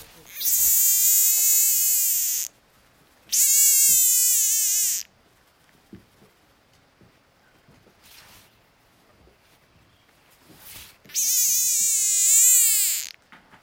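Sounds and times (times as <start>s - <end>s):
Bokermannohyla circumdata distress call: 0.2s - 2.5s, 3.3s - 5.1s, 11.1s - 13.2s.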